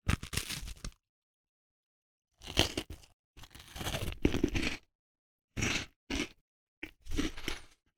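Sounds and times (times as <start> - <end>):
cookie being crunched: 0.0 - 1.0, 2.4 - 4.9, 5.6 - 7.9.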